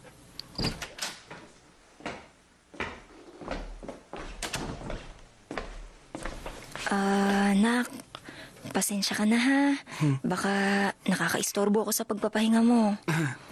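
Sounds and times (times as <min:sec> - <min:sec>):
unlocked door opening with handle and latch clunks: 0:00.5 - 0:01.4, 0:04.4 - 0:05.0
knocks and scuffs of a mother entering the room: 0:00.6 - 0:07.4
speech: 0:06.9 - 0:08.0, 0:08.8 - 0:13.5.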